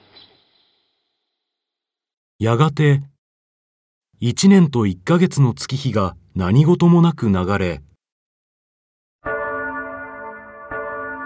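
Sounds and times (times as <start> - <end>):
speech: 2.4 - 3.1, 4.2 - 7.9
church bells ringing: 9.2 - 11.2.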